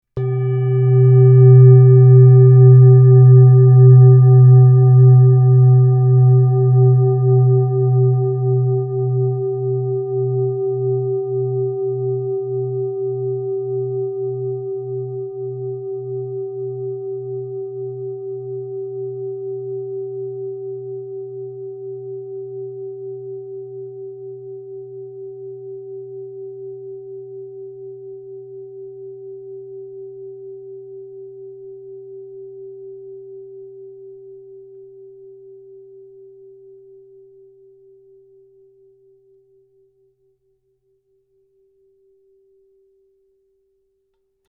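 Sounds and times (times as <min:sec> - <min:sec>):
singing bowl: 0:00.2 - 0:40.2.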